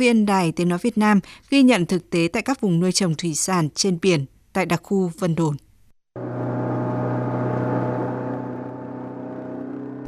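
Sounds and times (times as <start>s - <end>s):
speech: 0.0s - 5.6s
speedboat motor cutting through waves in a bay: 6.2s - 10.0s.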